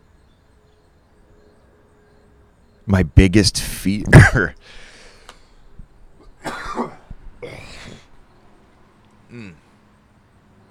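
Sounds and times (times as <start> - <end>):
speech: 2.9 - 4.9, 9.3 - 9.6
harsh coughing bursts: 4.0 - 4.8, 6.4 - 8.1
throat clearing: 6.4 - 8.1, 9.3 - 9.7.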